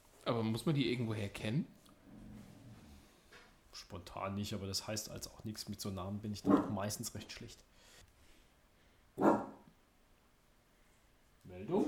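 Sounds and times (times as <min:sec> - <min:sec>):
speech: 0:00.3 - 0:01.8, 0:03.8 - 0:08.0, 0:11.6 - 0:11.8
bulldog barking: 0:06.5 - 0:06.7, 0:09.2 - 0:09.7.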